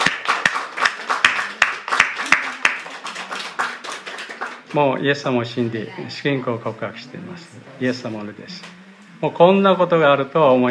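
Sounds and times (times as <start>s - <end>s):
room full of people applauding: 0.0s - 4.9s
faint murmur of voices: 1.1s - 10.6s
speech: 4.7s - 10.6s.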